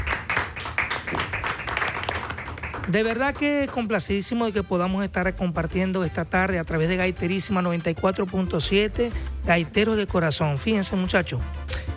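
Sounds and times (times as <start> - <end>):
small group applauding: 0.0 - 4.6
speech: 2.9 - 11.8.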